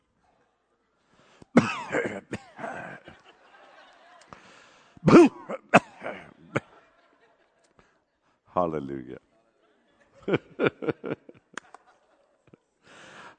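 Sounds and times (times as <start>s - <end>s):
woman clearing her throat: 1.6s - 3.0s, 5.0s - 6.4s
woman coughing: 1.6s - 3.0s, 5.0s - 6.4s
laughter: 1.6s - 8.2s, 9.5s - 13.3s
speech: 5.0s - 5.4s, 8.7s - 9.2s, 10.3s - 10.9s.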